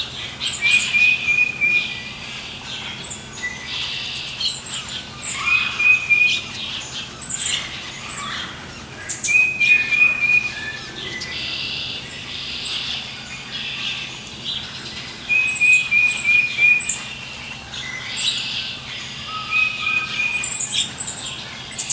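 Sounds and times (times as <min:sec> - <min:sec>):
birds: 0:00.0 - 0:21.9.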